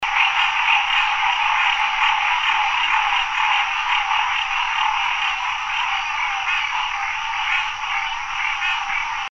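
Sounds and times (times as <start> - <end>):
green treefrog call at Chesapeake Bay: 0.0 - 9.3.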